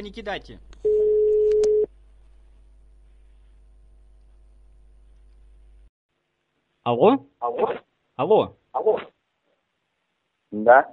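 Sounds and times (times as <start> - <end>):
speech: 0.0 - 1.0, 6.9 - 9.1, 10.5 - 10.9
telephone ringback tone as a call is placed: 0.9 - 1.9.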